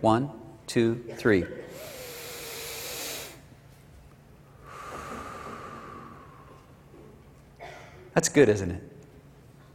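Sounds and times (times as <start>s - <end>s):
speech: 0.0s - 1.9s, 8.2s - 8.9s
deep breath drawn in: 1.7s - 3.4s, 4.6s - 6.7s
long steady exhale: 1.7s - 3.5s, 4.6s - 6.7s.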